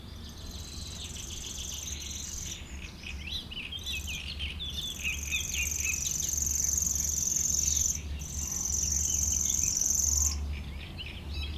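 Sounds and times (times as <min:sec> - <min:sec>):
other birds singing chattering songs: 0:00.2 - 0:11.5
Common Grasshopper Warbler reeling in a reedbed: 0:04.9 - 0:10.4.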